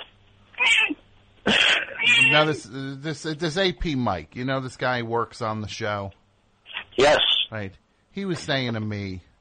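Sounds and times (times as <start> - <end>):
cat meowing: 0.6 - 1.0, 1.9 - 2.6
speech: 2.4 - 6.2, 7.0 - 9.3.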